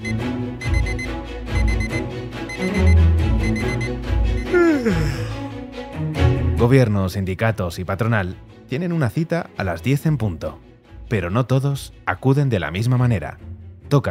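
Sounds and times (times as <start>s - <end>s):
alarm clock ringing: 0.0s - 4.5s
music: 0.0s - 14.0s
speech: 4.8s - 5.3s, 6.6s - 14.0s.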